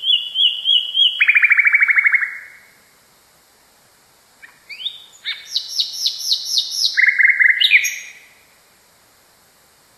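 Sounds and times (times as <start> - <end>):
nightingale song phrase with rising whistles and rattling trill: 0.0 - 2.8, 4.4 - 8.6.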